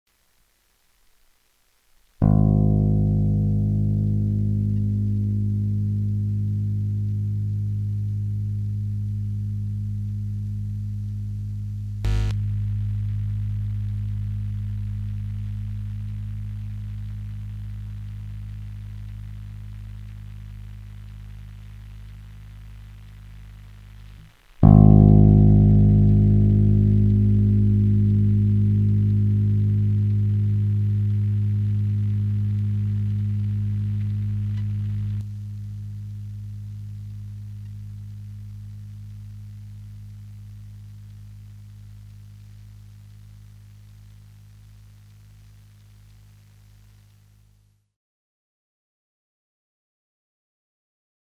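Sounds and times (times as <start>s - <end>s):
electric guitar note with coil-switched pickups: 2.2s - 22.6s, 24.0s - 42.1s.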